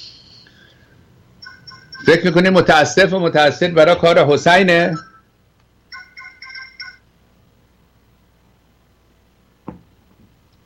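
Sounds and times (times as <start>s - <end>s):
mobile phone ringtone of bright repeating electronic tones: 1.4s - 2.4s, 5.9s - 7.1s
speech: 2.0s - 5.1s
soft thump: 9.6s - 10.3s.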